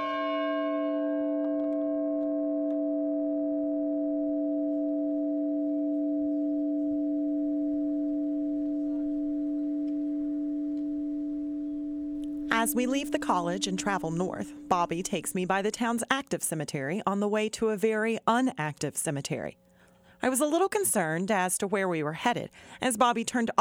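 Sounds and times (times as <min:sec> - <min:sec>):
large bell in a college schoolhouse bell tower striking: 0:00.0 - 0:16.0
speech: 0:12.6 - 0:19.6, 0:20.2 - 0:23.5.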